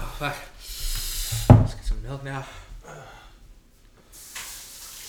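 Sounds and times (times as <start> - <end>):
mouth rinsing and spitting: 0.1 - 2.2, 4.2 - 5.0
speech: 0.2 - 0.5.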